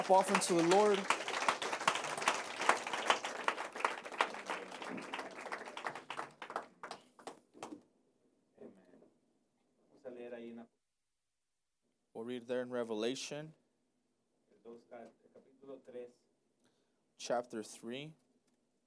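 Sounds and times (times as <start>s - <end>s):
speech: 0.0s - 1.3s, 12.8s - 13.6s, 14.7s - 16.2s, 17.2s - 18.2s
audience applauding at a church service: 0.0s - 7.8s.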